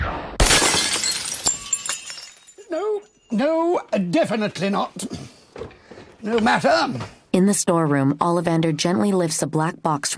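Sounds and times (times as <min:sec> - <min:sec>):
glass vase shattering: 0:00.4 - 0:03.3
falling glass shards tinkling: 0:00.5 - 0:03.7
speech: 0:03.3 - 0:10.1.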